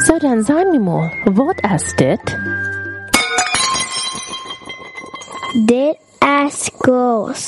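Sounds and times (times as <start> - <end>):
speech: 0.1 - 2.7, 5.5 - 7.4
glass clinking: 3.1 - 6.2.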